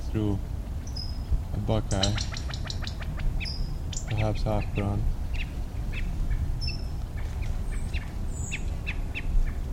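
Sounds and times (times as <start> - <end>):
low steady hiss: 0.0 - 9.7
speech: 0.1 - 0.6, 1.6 - 2.4, 4.1 - 5.2
quail calling near a buckeye: 0.8 - 9.7.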